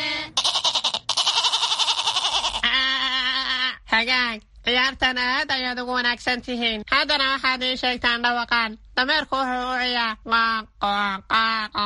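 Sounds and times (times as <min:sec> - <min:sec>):
goat bleating: 0:00.4 - 0:03.4
speech: 0:04.0 - 0:11.8.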